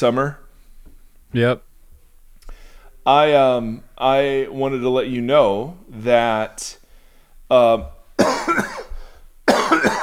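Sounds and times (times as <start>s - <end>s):
speech: 0.0s - 0.4s, 1.3s - 1.7s, 3.0s - 6.8s, 7.5s - 8.8s
person coughing in a coughing fit: 8.2s - 10.0s.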